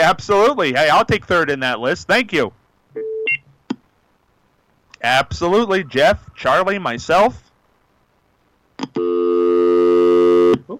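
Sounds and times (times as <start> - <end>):
speech: 0.1 - 3.0, 5.0 - 7.5, 8.8 - 10.0, 10.6 - 10.7
telephone busy signal after a dropped call: 9.0 - 10.6.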